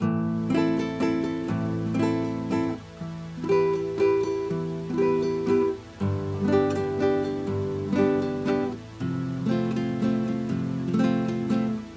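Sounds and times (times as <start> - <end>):
guitar: 0.0 - 11.9.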